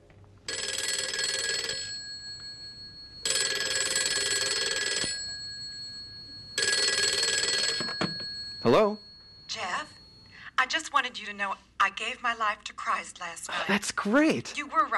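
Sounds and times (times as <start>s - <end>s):
telephone ringing with a classic trilling bell tone: 0.5s - 10.4s
speech: 11.3s - 14.9s.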